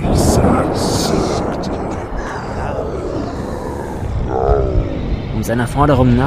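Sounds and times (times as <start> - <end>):
thunder rumbling in a storm: 0.0 - 6.2
speech: 5.5 - 6.2.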